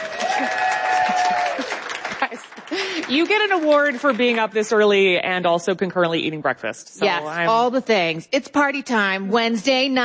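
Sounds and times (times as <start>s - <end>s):
long drawn-out whoop: 0.0s - 1.7s
audience applause: 0.0s - 4.3s
speech: 0.4s - 1.6s, 3.1s - 10.0s.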